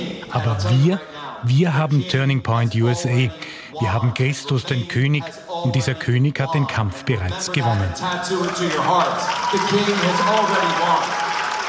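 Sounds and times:
speech: 0.0 - 11.2
crowd cheering and clapping at a rally in a hall: 7.9 - 11.6
shouts and whoops from a rally crowd: 8.3 - 11.6.

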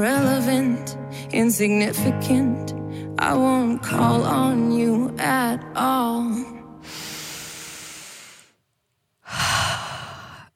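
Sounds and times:
speech: 0.0 - 7.1
deep relieved breath in and out: 6.8 - 8.6, 9.2 - 10.5.

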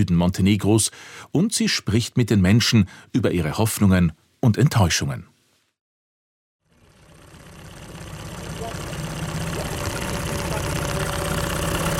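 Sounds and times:
speech: 0.0 - 5.3
wooden tourist boat engine humming on a lake: 6.7 - 11.9.

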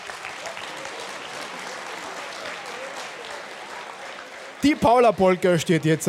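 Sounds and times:
audience applause: 0.0 - 6.0
speech: 4.6 - 6.0.

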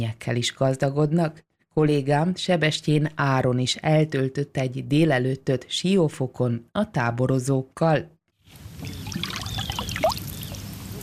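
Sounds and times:
speech: 0.0 - 9.0
small water splashes and trickles: 8.8 - 10.7.

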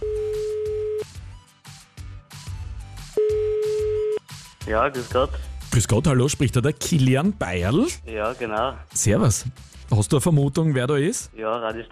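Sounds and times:
telephone dialing beeps and clicks: 0.0 - 1.0, 3.2 - 4.2
steady telephone tone: 0.0 - 1.1, 3.2 - 4.2
faint rhythmic background: 1.9 - 11.9
speech: 4.7 - 11.9.

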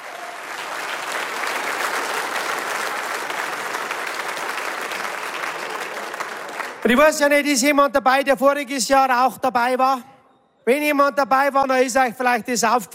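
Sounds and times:
audience applause: 0.0 - 6.9
speech: 6.9 - 12.9.

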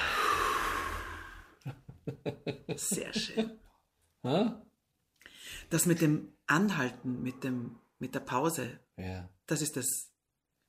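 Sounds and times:
slow breathing in and out during a guided breathing exercise: 0.0 - 1.7, 5.2 - 5.7
laughter: 1.6 - 3.6
speech: 2.1 - 4.7, 5.6 - 10.1.

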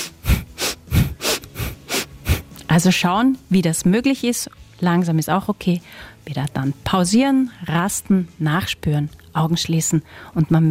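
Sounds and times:
fast rhythmic breathing during a swinging exercise: 0.0 - 2.6
speech: 2.8 - 10.6.

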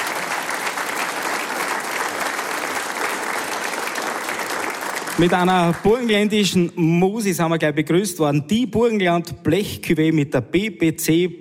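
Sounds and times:
dense applause from a sizable audience: 0.0 - 6.3
speech: 5.2 - 11.3.

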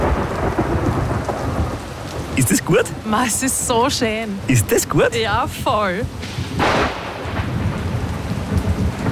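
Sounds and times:
deep rumble of thunder: 0.0 - 2.4, 6.0 - 9.1
steady hissing rainfall: 0.0 - 9.1
speech: 2.4 - 6.3.

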